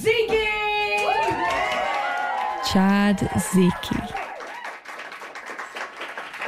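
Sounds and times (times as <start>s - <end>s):
audience applause for a final act: 1.0s - 6.4s
speech: 2.7s - 4.2s.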